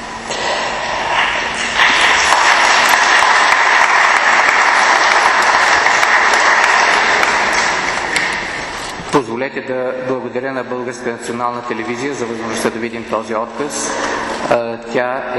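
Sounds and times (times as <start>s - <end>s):
large audience applause: 1.1s - 9.0s
speech: 9.5s - 15.3s.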